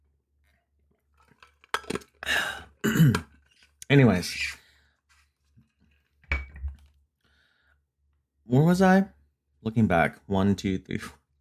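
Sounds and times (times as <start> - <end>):
person clearing a dry throat: 2.8 - 3.3
speech: 3.9 - 4.6, 8.6 - 11.2.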